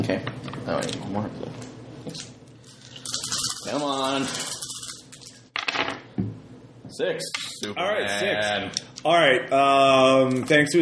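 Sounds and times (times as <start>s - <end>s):
speech: 0.0s - 2.4s, 3.6s - 4.5s, 7.0s - 10.8s
five dice rolled across a hard tabletop during a tabletop game: 5.6s - 6.0s.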